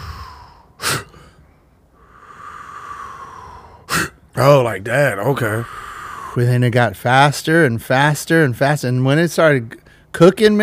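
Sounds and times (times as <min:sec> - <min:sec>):
person taking a sharp quick inhale: 0:00.0 - 0:01.4, 0:02.0 - 0:04.1
person breathing in a longer steady airy breath: 0:00.0 - 0:04.2, 0:05.3 - 0:06.6, 0:09.8 - 0:10.1
speech: 0:04.4 - 0:05.8, 0:06.4 - 0:10.6.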